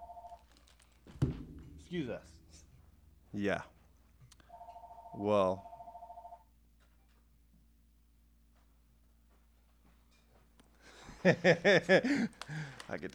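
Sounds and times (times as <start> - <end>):
telephone ringing with an incoming call: 0.0 - 0.8, 4.4 - 6.5
speech: 1.9 - 2.6, 3.3 - 3.8, 5.1 - 5.7, 11.2 - 13.1
laughter: 10.9 - 13.1.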